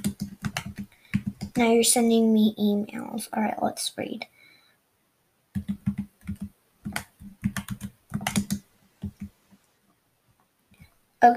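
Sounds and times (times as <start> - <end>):
typing on a computer keyboard: 0.0 - 1.6, 5.6 - 9.3
speech: 1.6 - 4.4.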